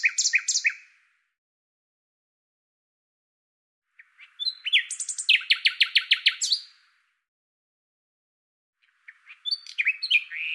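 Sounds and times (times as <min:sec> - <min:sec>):
Common nightingale song: 0:00.0 - 0:01.2, 0:03.9 - 0:07.1, 0:08.8 - 0:10.5.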